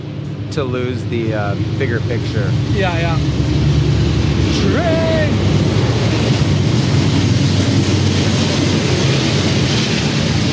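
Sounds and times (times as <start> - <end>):
train passing by in Northeast Minneapolis: 0.0 - 10.5
speech: 0.5 - 3.5, 4.6 - 5.5.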